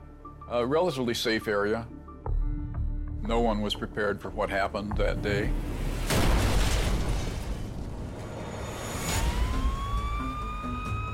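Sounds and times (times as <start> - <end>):
speech: 0.5 - 2.0, 3.2 - 5.7
loud explosion rocking a house in a rural community outside Anchorage: 5.7 - 10.0
high rising siren-like wails: 8.4 - 11.1.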